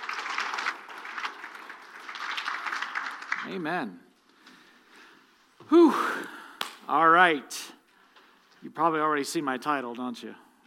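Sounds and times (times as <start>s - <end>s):
audience applause: 0.0s - 3.6s
speech: 3.4s - 4.1s, 5.7s - 7.6s, 8.6s - 10.4s.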